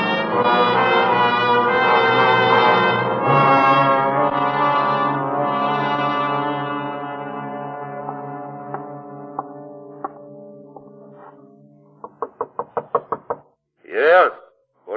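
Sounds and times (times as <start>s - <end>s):
steady droning tone: 0.0s - 12.2s
faint evenly spaced taps: 8.0s - 11.0s, 12.0s - 13.4s
landlord bringing mail knocking on a door: 12.0s - 13.5s.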